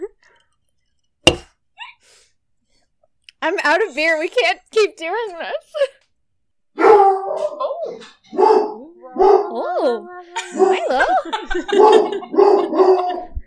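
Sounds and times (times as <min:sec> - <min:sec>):
speech: 0:03.4 - 0:06.0, 0:09.2 - 0:13.2
dog barking at people in a hallway: 0:06.8 - 0:09.6, 0:11.7 - 0:13.3
laughter: 0:10.2 - 0:13.3.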